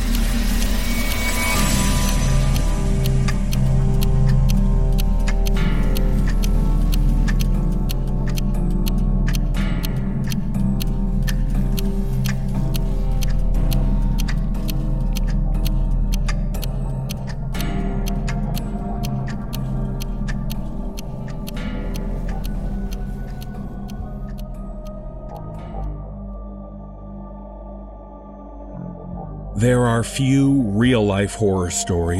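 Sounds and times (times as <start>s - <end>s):
about a hundred clocks ticking in a clock collection: 0.0s - 26.0s
speech: 29.6s - 32.1s.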